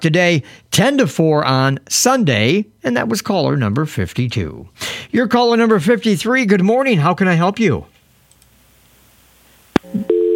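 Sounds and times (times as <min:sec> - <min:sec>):
speech: 0:00.0 - 0:07.9
telephone busy tone after a caller disconnects: 0:09.8 - 0:10.3.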